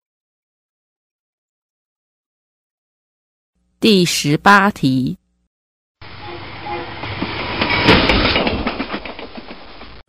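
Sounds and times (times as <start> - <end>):
speech: 3.8 - 5.2
train wheels clattering on rails: 6.0 - 10.0.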